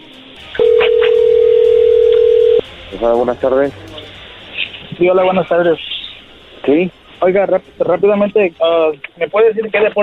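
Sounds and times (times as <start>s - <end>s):
phone line tone while a call is dialed: 0.6s - 2.6s
speech: 3.0s - 3.9s, 5.0s - 5.9s, 6.7s - 10.0s.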